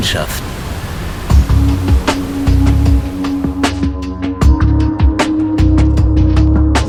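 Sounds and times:
ship hull slamming into rough sea waves: 0.0 - 4.0
splashing of rough sea waves against a ship: 0.0 - 4.0
ship's engine droning on the open sea: 0.0 - 6.8
speech: 0.1 - 0.6.

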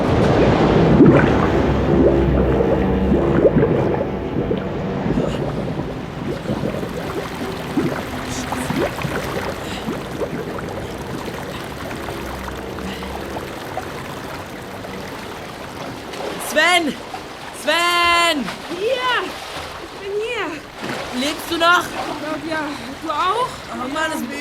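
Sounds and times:
torrential river current rushing: 0.0 - 24.3.

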